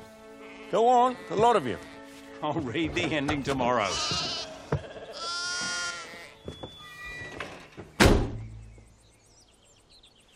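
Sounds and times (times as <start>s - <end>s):
sheep bleating: 0.3s - 2.2s, 3.7s - 6.4s
speech: 0.7s - 4.4s
sharp door-like thump: 7.9s - 8.6s.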